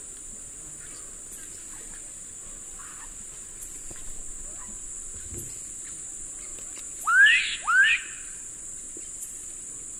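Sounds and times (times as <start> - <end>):
constant high-pitched insect hum: 0.0 - 9.9
black-capped donacobius rising whistled notes in eastern lowlands of South America: 7.0 - 8.4.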